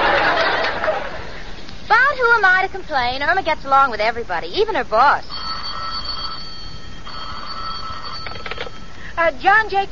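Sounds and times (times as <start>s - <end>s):
laughter: 0.0s - 1.4s
steady hiss: 0.0s - 9.9s
speech: 2.4s - 5.4s, 9.2s - 9.9s
telephone bell ringing in an attorney's office: 5.3s - 9.0s.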